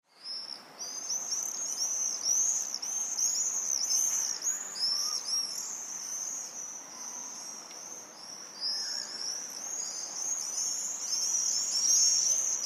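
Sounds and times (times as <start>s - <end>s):
faint background hiss: 0.1s - 12.6s
several swifts screaming in a chorus: 0.3s - 12.6s.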